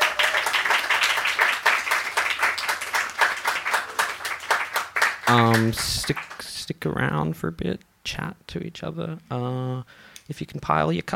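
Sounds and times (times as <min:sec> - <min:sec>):
crowd clapping for performers: 0:00.0 - 0:06.6
speech: 0:05.3 - 0:11.1.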